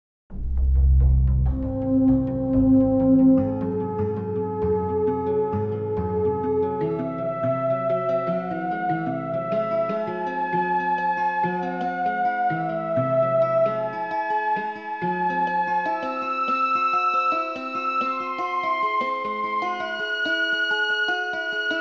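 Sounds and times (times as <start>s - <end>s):
13-limit harmonic series melody: 0.3s - 21.7s.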